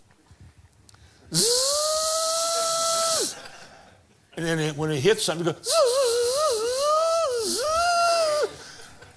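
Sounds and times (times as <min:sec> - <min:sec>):
speech: 0:01.3 - 0:01.6, 0:04.4 - 0:06.1
voice imitating a dentist's drill: 0:01.3 - 0:03.3, 0:05.7 - 0:07.9.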